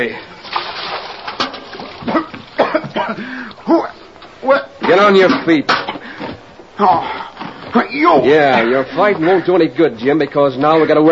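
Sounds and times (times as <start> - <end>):
speech: 0.0 - 0.4, 3.0 - 5.8, 6.8 - 11.1
bucket of water splashed on a man: 0.3 - 2.9.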